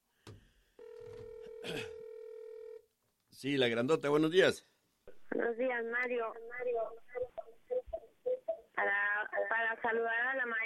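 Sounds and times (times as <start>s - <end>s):
telephone signalling an incoming call: 0.8s - 2.8s
speech: 1.6s - 2.0s, 3.4s - 4.7s, 5.4s - 7.4s, 8.8s - 10.6s.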